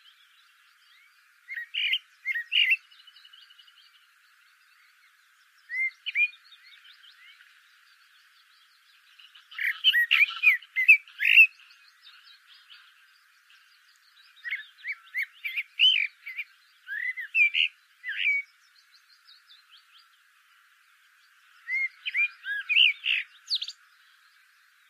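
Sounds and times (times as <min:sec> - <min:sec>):
Eurasian blackbird Turdus merula singing: 0:00.0 - 0:24.8.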